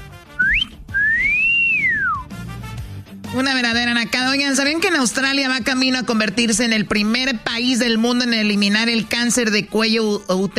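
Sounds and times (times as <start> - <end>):
person whistling a catcall at women: 0.4 - 2.3
speech: 3.3 - 10.5.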